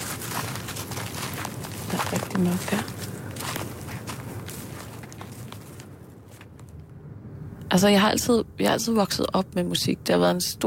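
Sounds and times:
footsteps crunching along an outdoor forest path: 0.0s - 6.8s
speech: 2.1s - 3.0s, 7.7s - 10.6s.

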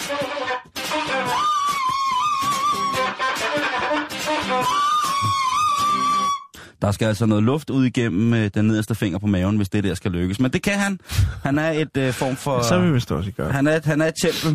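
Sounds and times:
two flutes playing a bright baroque-style melody: 0.0s - 6.5s
speech: 6.8s - 14.5s.

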